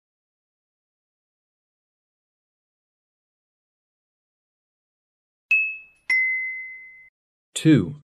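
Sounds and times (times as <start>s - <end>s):
bell ringing with bright clear dings: 5.5s - 7.1s
speech: 7.6s - 8.0s.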